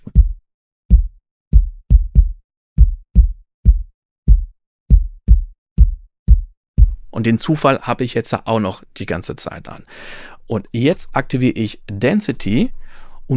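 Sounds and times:
solo kick drum playing a sixteenth-note pattern: 0:00.0 - 0:07.0
speech: 0:07.2 - 0:13.3.

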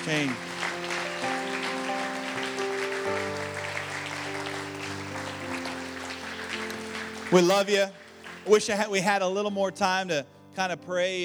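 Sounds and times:
speech: 0:00.0 - 0:00.5, 0:07.3 - 0:11.2
sustained keyboard or organ chords: 0:00.0 - 0:08.7
audience applause: 0:00.0 - 0:08.8.

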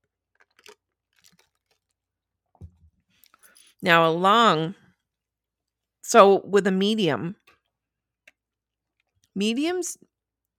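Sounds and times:
sipping and swallowing from a drink: 0:00.3 - 0:02.0
speech: 0:03.8 - 0:04.8, 0:06.1 - 0:07.4, 0:09.4 - 0:10.1.

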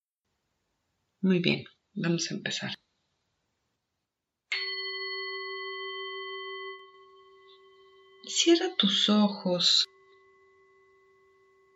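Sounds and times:
speech: 0:01.2 - 0:02.8, 0:08.3 - 0:09.9
meditation gong being struck: 0:04.5 - 0:09.1, 0:09.8 - 0:11.7.

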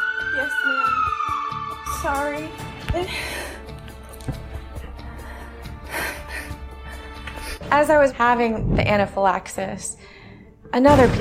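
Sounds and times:
ambulance siren wailing: 0:00.0 - 0:02.9
speech: 0:02.0 - 0:03.6, 0:07.7 - 0:10.0, 0:10.7 - 0:11.1.

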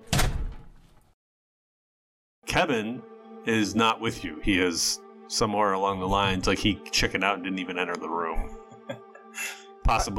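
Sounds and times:
door shutting with a solid thud: 0:00.0 - 0:01.0
speech: 0:02.5 - 0:10.1.

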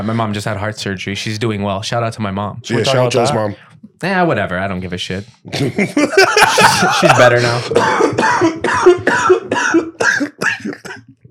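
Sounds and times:
speech: 0:00.0 - 0:09.9
laughter: 0:05.5 - 0:07.8
harsh chesty coughing fit: 0:06.6 - 0:11.2.

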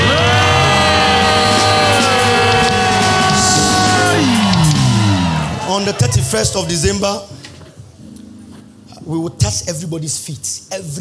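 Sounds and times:
audience screaming and praising God: 0:00.0 - 0:07.3
speech: 0:05.8 - 0:07.4, 0:09.1 - 0:10.9.

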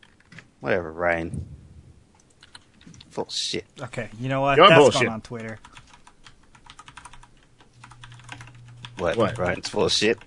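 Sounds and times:
typing on a computer keyboard: 0:00.0 - 0:00.4, 0:02.2 - 0:02.9, 0:05.3 - 0:10.2
faint hum: 0:00.0 - 0:10.2
speech: 0:00.6 - 0:01.6, 0:03.2 - 0:05.7, 0:09.0 - 0:10.2.

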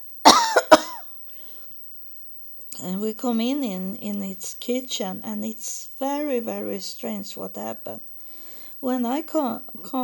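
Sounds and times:
harsh cough: 0:00.3 - 0:01.0
speech: 0:02.8 - 0:08.1, 0:08.8 - 0:10.0.

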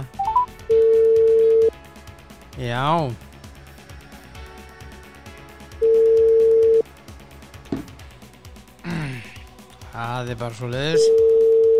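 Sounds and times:
phone ringback tone: 0:00.2 - 0:01.7, 0:05.8 - 0:06.8, 0:11.0 - 0:11.7
speech: 0:02.6 - 0:03.3, 0:10.0 - 0:11.3.

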